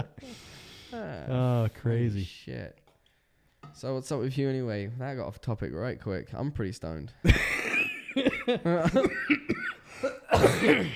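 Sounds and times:
speech: 0.9s - 2.8s, 3.7s - 7.6s, 8.2s - 10.9s
laughter: 7.3s - 10.2s
person coughing: 8.8s - 10.9s.

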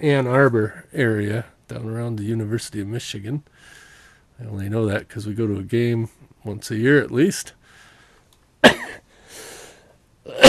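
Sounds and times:
speech: 0.0s - 3.8s, 4.4s - 7.6s
person coughing: 8.6s - 9.0s, 10.3s - 10.4s.

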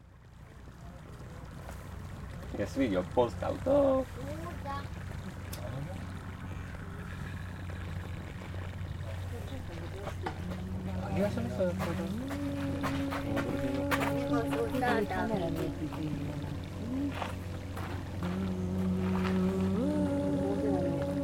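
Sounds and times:
steady low rumble beneath a linden tree in Linn: 0.0s - 21.2s
soft wind-like wash beneath a linden tree in Linn: 0.4s - 21.2s
speech: 2.5s - 5.1s, 9.9s - 13.7s, 14.4s - 16.5s.

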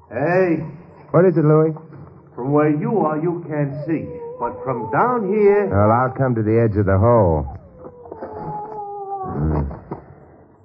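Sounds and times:
speech: 0.1s - 7.6s
dog howling: 2.5s - 9.7s.

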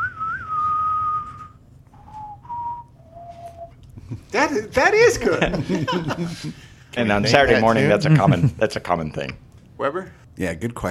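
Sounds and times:
person whistling a Western movie theme: 0.0s - 3.8s
speech: 4.1s - 10.9s
laughter: 5.0s - 6.7s.

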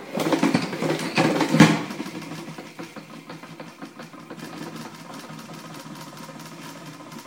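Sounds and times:
salad spinner basket whirring: 0.0s - 7.2s.

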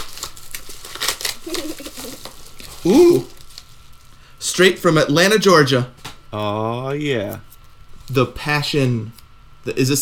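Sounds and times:
plastic packaging of a music album crinkling and tearing: 0.0s - 4.1s
speech: 2.8s - 3.3s, 4.5s - 7.5s, 8.1s - 9.9s.

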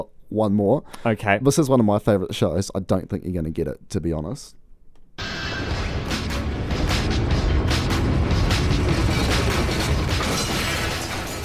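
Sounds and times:
speech: 0.0s - 4.6s
rumbling din: 5.2s - 11.4s
glass being smashed: 8.8s - 11.4s.

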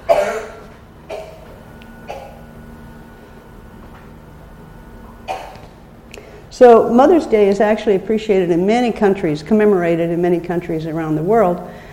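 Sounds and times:
dry coughs: 0.0s - 1.5s, 2.1s - 2.4s, 5.3s - 5.7s
faint steady hum: 0.0s - 11.9s
speech: 6.6s - 11.8s.

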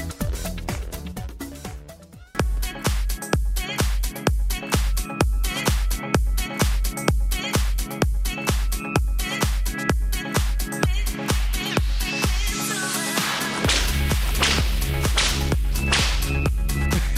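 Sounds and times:
loud driving music track with heavy bass beat: 0.0s - 17.1s
whip cracks: 13.2s - 16.5s.

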